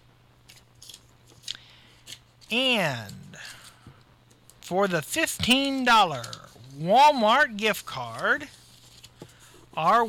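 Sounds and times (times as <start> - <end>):
low steady hum: 0.0 - 10.0
speech: 2.5 - 3.2, 4.7 - 8.6, 9.8 - 10.0
paper name slips being shuffled to draw a contest winner: 5.4 - 10.0.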